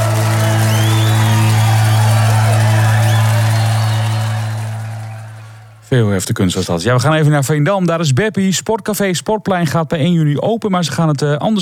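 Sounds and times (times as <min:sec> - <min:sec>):
whoops from the crowd: 0:00.0 - 0:05.7
high whistles from the crowd: 0:00.0 - 0:05.8
crowd cheering: 0:00.0 - 0:05.9
speech: 0:05.9 - 0:11.6.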